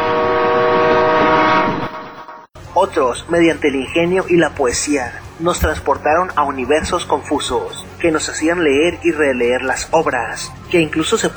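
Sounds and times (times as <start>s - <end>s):
train horn: 0.0s - 3.1s
speech: 2.8s - 11.3s.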